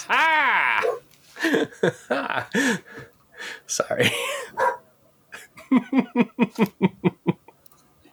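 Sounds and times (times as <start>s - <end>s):
person imitating a dog howling and barking: 0.0s - 1.0s
laughter: 1.4s - 3.0s, 5.4s - 7.6s
speech: 1.6s - 4.7s.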